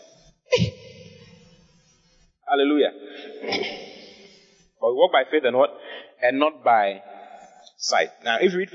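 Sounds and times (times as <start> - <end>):
person sneezing: 0.5 - 0.9, 3.2 - 4.0
speech: 2.5 - 3.9, 4.8 - 7.1, 7.8 - 8.7.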